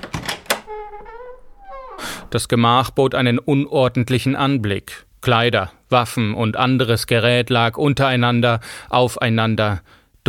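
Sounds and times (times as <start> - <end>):
latch clicks: 0.0 - 2.2
cabin door opening with a long tonal hinge creak: 0.0 - 2.5
speech: 2.3 - 10.2.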